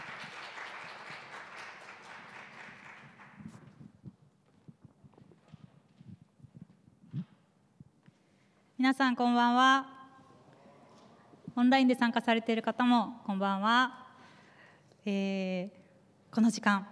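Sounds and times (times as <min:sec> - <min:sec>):
room full of people applauding in welcome: 0:00.0 - 0:03.6
footsteps: 0:03.4 - 0:08.3
speech: 0:08.8 - 0:09.9, 0:11.6 - 0:14.0, 0:15.1 - 0:16.9.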